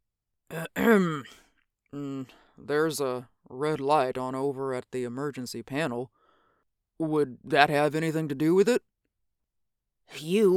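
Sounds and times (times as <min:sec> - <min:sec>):
man clearing his throat: 0:00.5 - 0:01.4
speech: 0:00.5 - 0:06.2, 0:07.0 - 0:08.9, 0:10.1 - 0:10.5.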